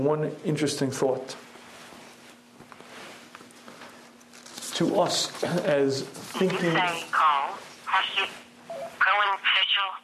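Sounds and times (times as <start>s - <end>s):
speech: 0.0s - 1.5s, 4.8s - 7.3s
steady low hum: 0.0s - 10.0s
mobile phone ringing during a lecture: 8.1s - 9.0s.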